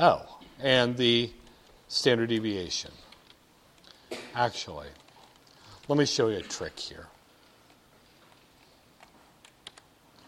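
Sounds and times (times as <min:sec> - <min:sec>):
speech: 0:00.0 - 0:03.0, 0:04.4 - 0:05.0, 0:05.9 - 0:07.1
low hiss: 0:00.0 - 0:10.2
computer keyboard clicks entering spreadsheet formulas: 0:04.9 - 0:05.9, 0:09.0 - 0:09.9.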